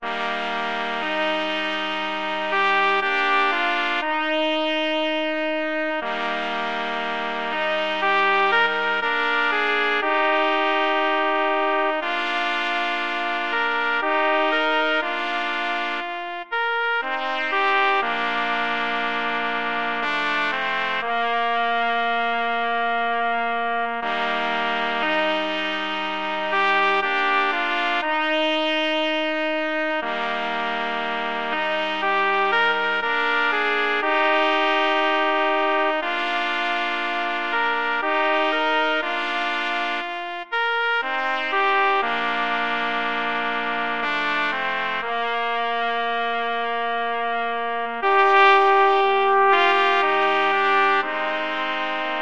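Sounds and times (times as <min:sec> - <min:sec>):
clarinet concerto: 0:00.0 - 0:52.2
trumpet trio: 0:00.0 - 0:52.2.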